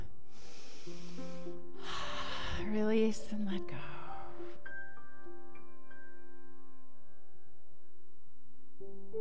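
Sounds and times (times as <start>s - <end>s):
deep inhale during a guided breathing exercise: 0.0s - 2.6s
speech: 2.7s - 4.0s.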